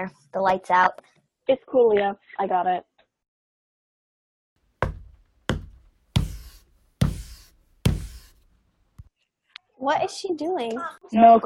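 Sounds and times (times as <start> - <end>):
speech: 0.0 - 2.9, 9.8 - 11.4
firm knocks on a bathroom stall door: 4.8 - 8.4.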